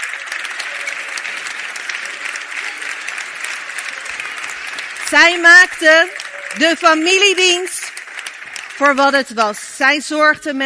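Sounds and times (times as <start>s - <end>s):
audience applause: 0.0s - 10.6s
speech: 5.1s - 7.8s, 8.8s - 10.6s.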